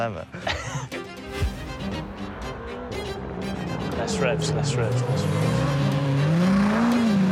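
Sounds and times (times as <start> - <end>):
speech: 0.0 - 0.6, 4.0 - 5.7
rally car engine idling and revving: 1.9 - 7.3.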